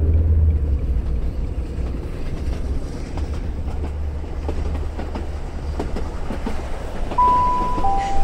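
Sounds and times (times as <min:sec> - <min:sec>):
train rumbling with deep low-end roar: 0:00.0 - 0:08.2
brief high tone: 0:07.2 - 0:08.2.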